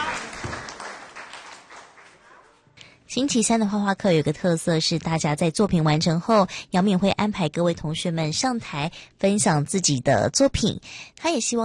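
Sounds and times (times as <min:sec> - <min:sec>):
elderly participants clapping at a drawing class: 0:00.0 - 0:02.7
speech: 0:03.1 - 0:11.6.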